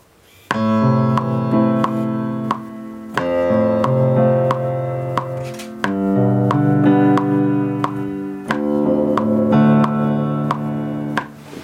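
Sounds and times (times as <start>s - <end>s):
metronome ticking: 0.5s - 11.4s
sustained piano chords: 0.5s - 11.6s.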